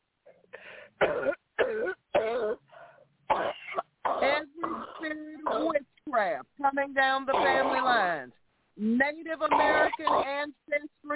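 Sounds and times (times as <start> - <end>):
woman clearing throat: 1.0 - 2.6, 3.3 - 5.8, 7.3 - 8.0, 9.5 - 10.4
woman coughing: 1.0 - 2.6, 3.3 - 5.8, 7.3 - 8.1, 9.5 - 10.4
speech: 7.0 - 11.1.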